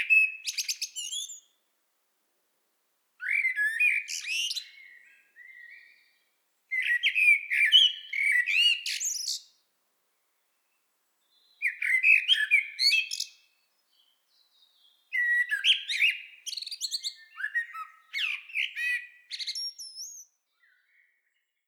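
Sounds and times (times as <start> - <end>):
Common blackbird Turdus merula singing: 0.0 - 1.6, 3.2 - 9.6, 11.3 - 21.6.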